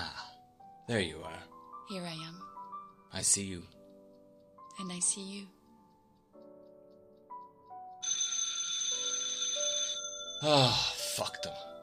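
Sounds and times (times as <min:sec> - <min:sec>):
soft stepped tones: 0:00.4 - 0:10.3
speech: 0:00.9 - 0:02.5, 0:03.1 - 0:03.8, 0:04.8 - 0:05.6, 0:10.4 - 0:11.6
telephone ringing with a shrill electronic trill: 0:08.0 - 0:10.5.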